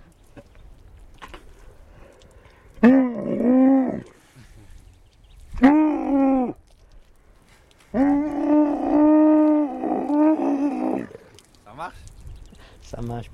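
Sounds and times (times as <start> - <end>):
camel bellowing: 2.8 - 4.2, 5.6 - 6.6, 7.9 - 11.4.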